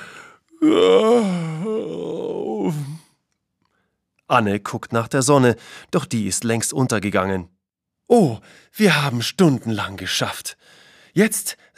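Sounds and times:
person yawning with a groaning exhale: 0.0 - 3.2
speech: 0.6 - 1.3, 4.3 - 11.7.

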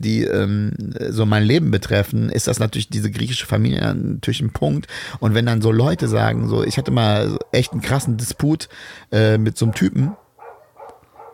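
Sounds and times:
speech: 0.0 - 10.2
dog barking: 5.8 - 8.1, 9.6 - 11.3.

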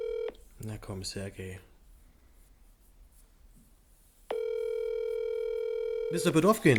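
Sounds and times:
telephone ringback tone while calling: 0.0 - 0.4, 4.3 - 6.7
speech: 0.6 - 1.7, 6.1 - 6.7.

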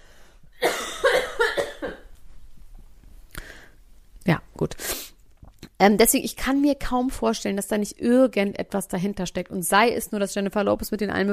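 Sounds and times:
person coughing loudly: 0.6 - 2.1
speech: 4.3 - 5.0, 5.8 - 11.3.

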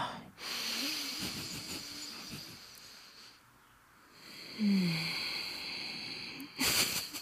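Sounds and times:
deep breathing exercise: 0.2 - 3.5, 4.0 - 6.6.

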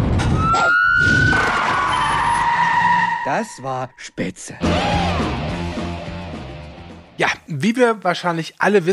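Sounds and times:
police car siren: 0.2 - 3.6
tyres skidding: 1.2 - 3.7
speech: 3.3 - 5.4, 7.2 - 8.9.

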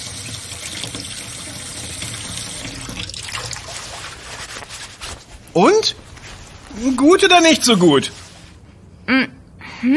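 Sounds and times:
running tap water pouring over a leafy green rinsed in a sink: 0.0 - 4.1
speech: 5.6 - 6.0, 6.8 - 8.2.

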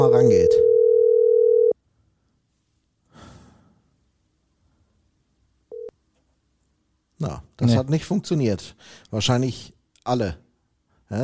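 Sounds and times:
telephone dial tone while a call is being retried: 0.6 - 1.8
breathy exhale: 3.1 - 3.9
speech: 7.2 - 10.4.

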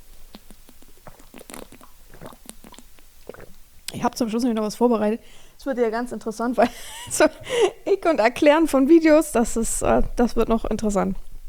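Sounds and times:
person taking a sip of a drink: 0.1 - 3.6
speech: 4.0 - 11.2.

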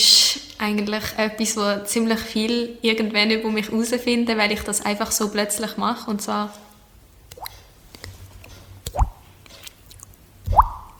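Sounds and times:
speech: 0.6 - 6.7
mouth imitating water dripping with liquid plops: 8.8 - 9.3, 9.9 - 10.9.

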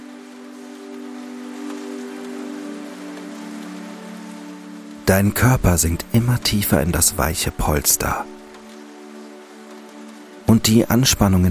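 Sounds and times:
rain pattering softly against a window: 0.0 - 11.4
speech: 5.1 - 8.4, 10.5 - 11.4.

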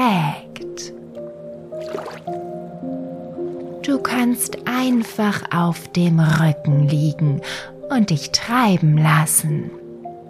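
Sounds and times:
soft musical drone: 0.0 - 10.2
warm water splashing as someone slides in: 1.1 - 4.6
speech: 3.9 - 9.8.

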